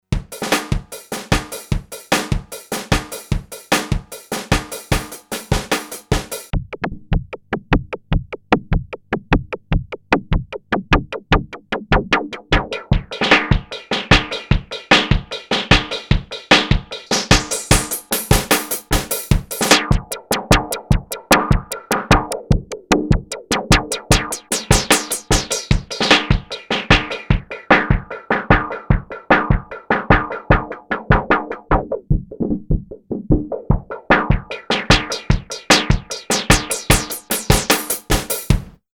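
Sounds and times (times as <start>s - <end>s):
analog filtered drum loop: 0.0s - 38.9s.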